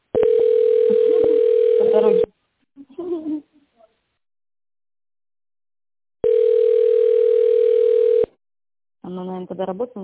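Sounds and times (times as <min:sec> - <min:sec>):
telephone ringback tone while call connects: 0:00.2 - 0:02.3, 0:06.2 - 0:08.3
speech: 0:09.6 - 0:10.0.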